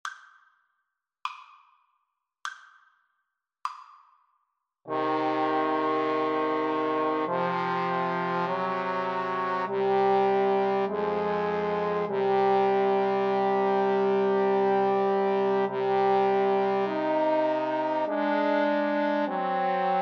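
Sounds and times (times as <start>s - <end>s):
trombone trio playing an aequale: 4.9s - 20.0s.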